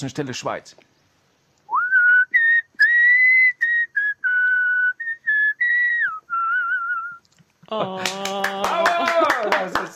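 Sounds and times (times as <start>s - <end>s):
speech: 0.0s - 0.9s, 7.7s - 8.3s, 9.4s - 9.9s
musician whistling a melody live in Switzerland: 1.7s - 7.2s
laughter: 7.6s - 9.9s.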